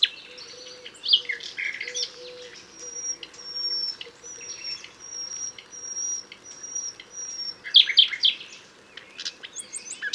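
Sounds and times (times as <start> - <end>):
common nightingale Luscinia megarhynchos singing: 0.0 - 7.7.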